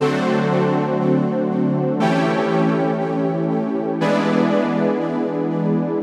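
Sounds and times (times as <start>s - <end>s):
C major secondary chords: 0.0s - 6.0s.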